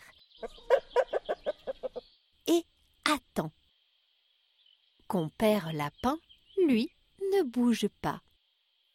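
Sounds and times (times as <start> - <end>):
hen clucking in a kitchen: 0.4 - 2.1
speech: 2.5 - 2.7, 5.2 - 8.2.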